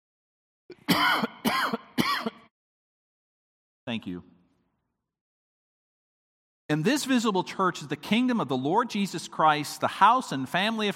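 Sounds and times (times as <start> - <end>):
harsh raspy coughs: 0.7 - 2.5
speech: 3.9 - 4.4, 6.7 - 10.9.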